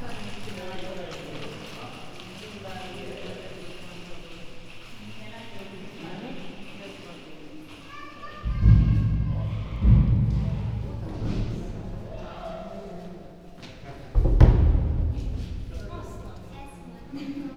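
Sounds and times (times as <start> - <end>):
chimpanzee drumming in the ape house at Veszprém zoo: 8.4 - 12.7, 14.1 - 16.8.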